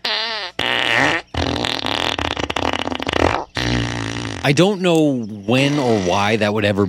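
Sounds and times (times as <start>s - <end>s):
fart sounds from a guitar effects pedal: 0.0s - 4.5s, 5.6s - 6.3s
speech: 4.4s - 6.8s.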